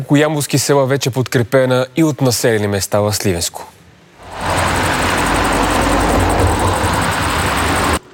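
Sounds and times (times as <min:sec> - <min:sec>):
speech: 0:00.0 - 0:03.8
cars driving past out of an airbase: 0:04.2 - 0:08.1
loud continuous roar of car engines and tyre noise: 0:04.2 - 0:08.1.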